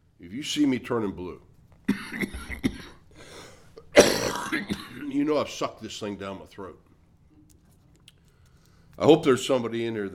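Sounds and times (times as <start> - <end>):
speech: 0.2 - 2.3, 5.2 - 6.8, 9.0 - 10.1
harsh cough: 1.9 - 3.1, 3.8 - 5.2.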